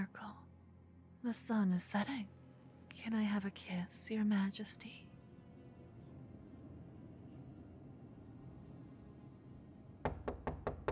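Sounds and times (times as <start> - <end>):
speech: 1.2 - 2.4, 3.0 - 5.1
firm knocks on a wooden door: 10.1 - 10.9.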